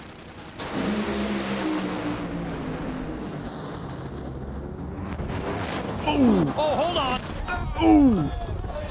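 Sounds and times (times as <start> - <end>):
race car engine exploding: 0.0 - 6.0
heavy sustained engine roar and rumble: 0.0 - 8.8
speech: 6.2 - 7.2.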